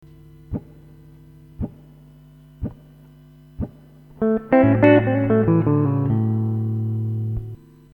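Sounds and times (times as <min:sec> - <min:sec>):
blues guitar licks: 0:04.2 - 0:07.6.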